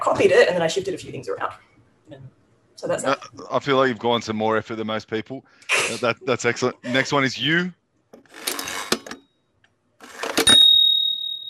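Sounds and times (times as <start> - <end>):
speech: 0.0 - 8.4
old broken braille writing machine clacking: 8.2 - 9.2
high ringing tone of braille writing machine: 10.4 - 11.4.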